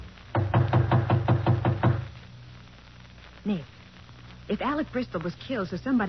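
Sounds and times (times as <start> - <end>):
solid knocks on a wooden door: 0.4 - 2.1
speech: 3.4 - 3.8, 4.5 - 6.0.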